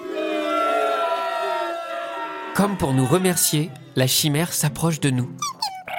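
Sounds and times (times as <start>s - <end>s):
crowd booing at a zoo: 0.0s - 4.0s
speech: 2.6s - 5.5s.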